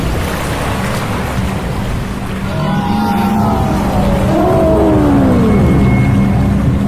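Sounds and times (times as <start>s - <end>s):
roar of rushing flood water: 0.0s - 6.8s
wailing sliding tones: 2.4s - 6.8s.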